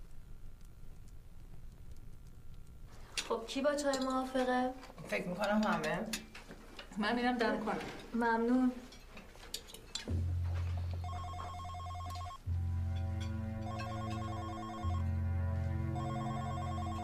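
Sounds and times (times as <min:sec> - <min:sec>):
speech: 0:03.3 - 0:06.3, 0:07.0 - 0:08.9
mobile phone electronic ringtone: 0:11.0 - 0:12.4, 0:13.6 - 0:15.1, 0:15.9 - 0:17.0
low buzzing tone: 0:11.0 - 0:17.0.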